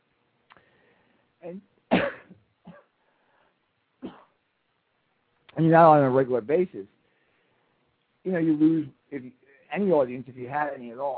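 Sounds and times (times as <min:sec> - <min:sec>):
speech: 0:01.4 - 0:02.3, 0:05.6 - 0:07.0, 0:08.2 - 0:11.1
person coughing: 0:01.9 - 0:02.9.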